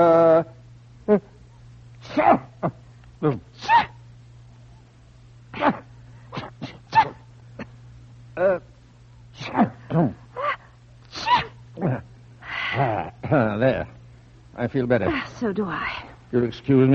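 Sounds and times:
low hum: 0.0 - 16.9
speech: 1.1 - 1.3, 2.2 - 3.8, 14.7 - 16.9
people sneezing after taking snuff: 2.0 - 4.0, 5.5 - 7.8, 9.4 - 13.4.

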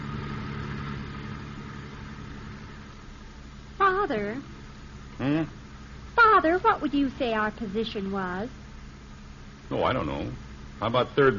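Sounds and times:
faint traffic-like wash: 0.0 - 3.3
car engine idling in busy traffic: 0.0 - 3.5
speech: 4.0 - 4.6, 5.2 - 5.6, 6.4 - 8.6, 9.7 - 11.3.

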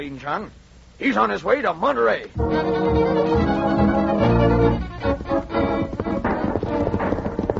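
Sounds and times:
speech: 0.0 - 3.8
herd of horses galloping: 3.4 - 7.5.

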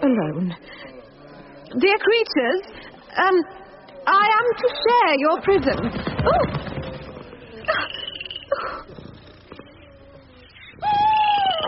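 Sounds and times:
speech: 0.1 - 1.0, 1.7 - 6.7
owl hooting: 7.7 - 11.6.

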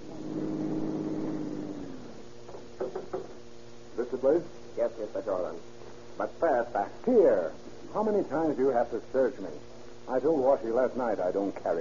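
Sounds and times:
car engine humming while driven over a field: 0.0 - 2.3
speech: 4.2 - 11.7.

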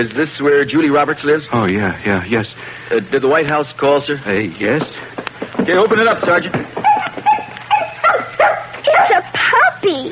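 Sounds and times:
speech: 0.0 - 6.8
little white puppy yipping and whimpering: 6.8 - 9.2.

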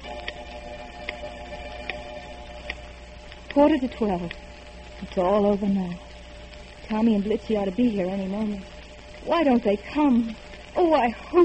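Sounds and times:
clock ticking: 0.0 - 5.6
low constant hum: 0.0 - 11.4
speech: 3.6 - 6.1, 6.9 - 11.4.

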